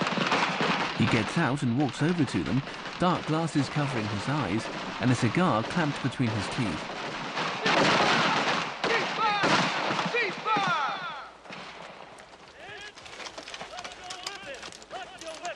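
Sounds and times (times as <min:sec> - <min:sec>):
rifle gunshots from soldiers at military target practice: 0:00.0 - 0:12.1
speech: 0:01.0 - 0:07.0, 0:07.8 - 0:08.0.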